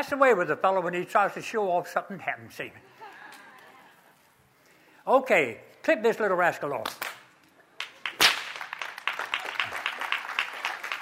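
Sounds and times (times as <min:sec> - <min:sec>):
speech: 0:00.0 - 0:03.0, 0:05.0 - 0:07.0
lighter clapping-like smacks: 0:06.8 - 0:10.9
whip crack during a whip-handling demonstration: 0:08.1 - 0:08.8.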